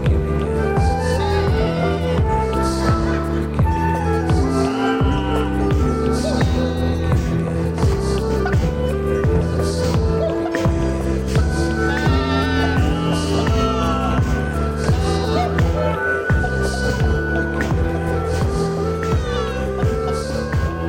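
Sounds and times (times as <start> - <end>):
rhythmic electronic music track: 0.0 - 20.8
goats bleating in wavering nasal cries: 11.8 - 16.0.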